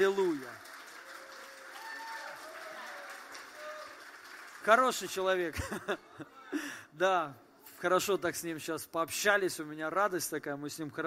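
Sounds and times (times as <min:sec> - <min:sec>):
speech: 0:00.0 - 0:00.7, 0:04.6 - 0:11.0
church audience applause: 0:00.0 - 0:05.4
faint voices and cheering: 0:01.0 - 0:04.0
laughter: 0:05.5 - 0:06.6.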